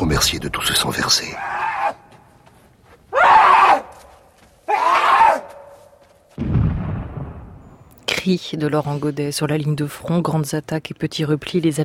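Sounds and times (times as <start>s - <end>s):
speech: 0.1s - 1.6s, 8.2s - 11.8s
loud strident howling screams: 1.3s - 2.1s, 3.1s - 4.1s, 4.7s - 5.7s
deep rumbling boom: 6.4s - 7.9s.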